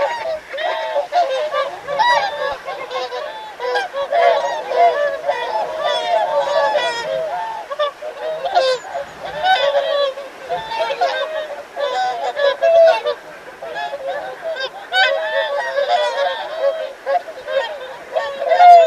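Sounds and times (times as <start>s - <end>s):
whooper swan flock calling: 0.0s - 18.8s.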